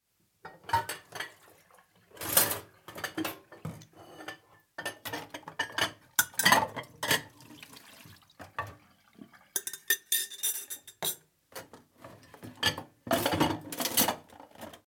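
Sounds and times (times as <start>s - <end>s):
dishwashing in a kitchen: 0.4s - 14.8s.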